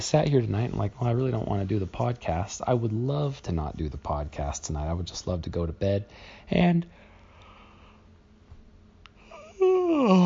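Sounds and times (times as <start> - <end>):
speech: 0.0 - 7.0, 10.1 - 10.2
person yawning: 9.2 - 10.2.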